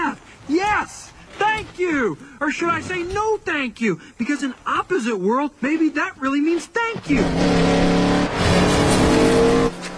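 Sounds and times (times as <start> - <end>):
speech: 0.5 - 7.8
racing car engine revving: 7.0 - 9.9
racing car tires squealing: 7.0 - 9.9.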